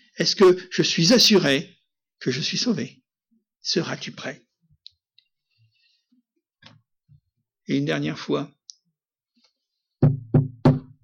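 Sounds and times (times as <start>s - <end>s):
speech: 0.2s - 3.0s, 3.6s - 4.4s, 7.7s - 8.6s
firm knocking on a wooden door: 10.0s - 11.0s.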